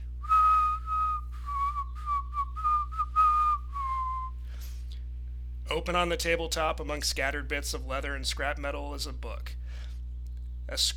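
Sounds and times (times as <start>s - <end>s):
low hum: 0.0s - 10.9s
old man at a workbench whistling a gentle lullaby-like tune: 0.2s - 4.5s
speech: 5.7s - 9.6s, 10.7s - 10.9s.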